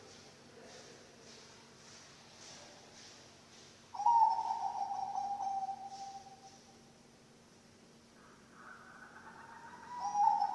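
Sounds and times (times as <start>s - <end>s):
low background hum: 0.0s - 10.5s
Bangkok-type zebra dove cooing song: 4.0s - 6.4s, 8.2s - 10.5s.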